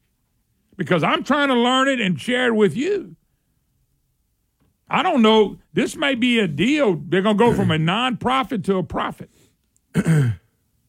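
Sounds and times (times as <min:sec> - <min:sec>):
speech: 0:00.8 - 0:03.2, 0:04.9 - 0:09.4, 0:10.0 - 0:10.4
throat clearing or cough into a microphone: 0:07.4 - 0:07.8, 0:09.9 - 0:10.5.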